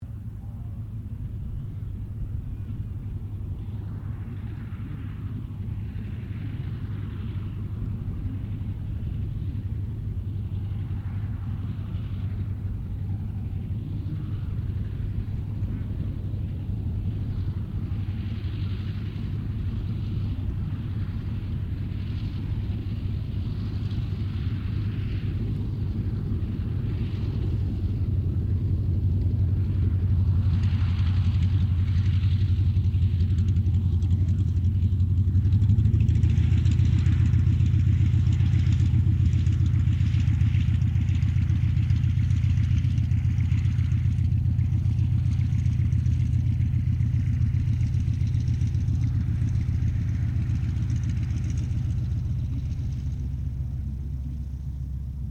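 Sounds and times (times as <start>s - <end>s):
distant CA-28 Ceres aircraft taxiing: 0.0s - 55.3s.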